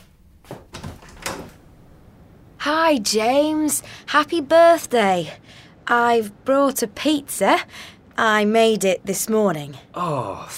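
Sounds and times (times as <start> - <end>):
front door clunks and rattles as it is opened: 0.6 - 1.6
speech: 2.6 - 10.5.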